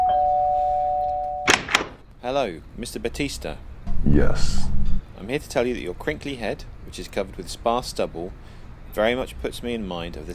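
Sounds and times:
doorbell ringing with a steady electronic tone: 0.0 - 1.5
noisy knock or bump: 1.5 - 2.0
speech: 2.2 - 10.3.

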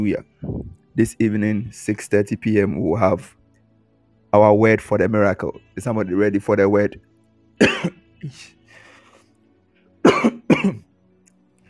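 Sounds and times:
speech: 0.0 - 0.4, 1.0 - 3.4, 4.3 - 8.6
person coughing: 7.6 - 8.5, 10.0 - 10.8.

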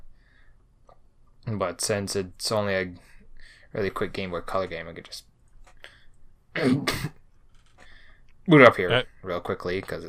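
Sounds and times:
speech: 1.5 - 3.1, 3.7 - 5.3, 6.6 - 7.1, 8.5 - 10.0
harsh coughs: 6.6 - 7.2.

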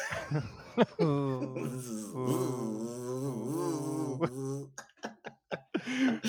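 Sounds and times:
people laughing: 0.0 - 1.7, 4.2 - 6.2
voice imitating a mosquito's buzz: 1.6 - 4.7.

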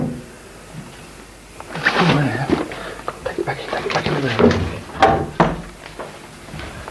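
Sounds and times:
speech: 2.0 - 2.5, 3.8 - 4.6
door shutting with a firm thud: 4.4 - 5.8.

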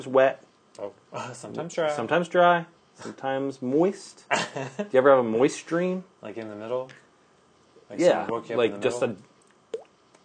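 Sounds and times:
speech: 0.0 - 7.0, 7.9 - 9.3
voice mimicking dripping liquid with bubbly mouth sounds: 9.7 - 10.0.

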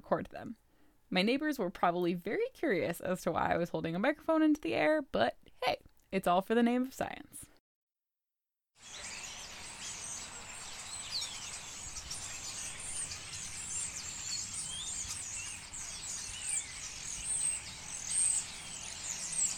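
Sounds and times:
speech: 0.1 - 7.5
flock of European starlings calling: 8.8 - 19.5.

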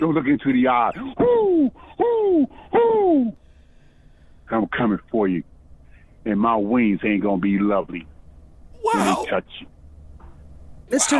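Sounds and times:
speech: 0.0 - 1.8, 2.4 - 2.6, 4.5 - 5.5, 6.2 - 8.1, 8.8 - 9.7, 10.9 - 11.1
person imitating owl hoots: 1.4 - 3.4, 8.8 - 9.3.

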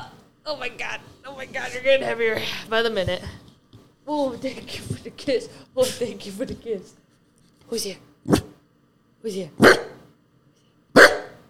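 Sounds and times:
speech: 0.5 - 3.4, 4.1 - 7.0, 7.7 - 8.5, 9.2 - 9.8
dog barking: 9.6 - 10.0, 11.0 - 11.4.

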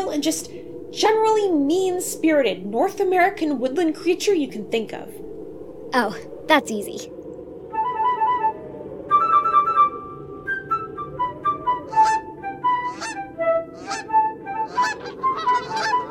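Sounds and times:
low rumbling background: 0.0 - 16.0
speech: 0.1 - 5.3, 5.9 - 7.2
Canada geese honking: 11.7 - 16.0.

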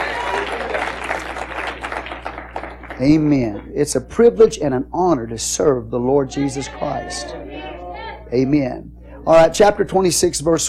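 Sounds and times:
audience clapping hands in praise of the Lord: 0.0 - 3.7
speech: 3.0 - 7.7, 8.3 - 10.6.

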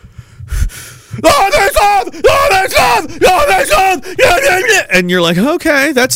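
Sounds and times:
voice imitating a screaming protester: 1.2 - 5.1
speech: 1.2 - 6.1.

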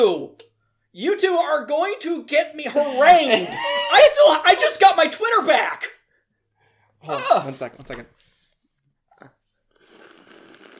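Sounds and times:
speech: 0.0 - 6.0, 7.0 - 8.2
laughter: 2.7 - 5.0
person sipping a drink: 9.2 - 10.7
loud hissy slurp: 9.7 - 10.7.

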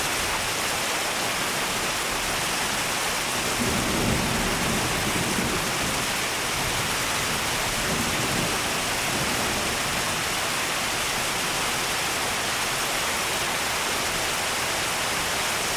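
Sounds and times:
steady rain: 0.0 - 15.7
low thunder rumbles: 3.4 - 10.3.

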